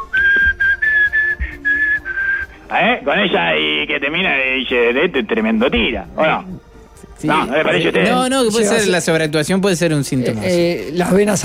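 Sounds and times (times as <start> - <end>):
person whistling a melody: 0.0 - 2.6
speech: 2.7 - 11.4.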